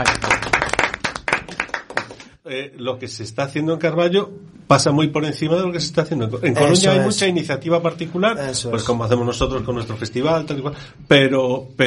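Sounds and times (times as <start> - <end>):
crowd clapping for a guest at a festival event in Galicia: 0.0 - 2.4
speech: 2.5 - 11.8.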